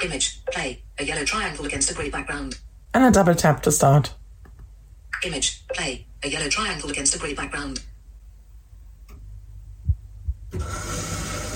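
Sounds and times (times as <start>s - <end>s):
speech: 0.0s - 4.2s, 5.2s - 7.9s, 10.5s - 11.0s
soft low thumps: 9.4s - 10.6s.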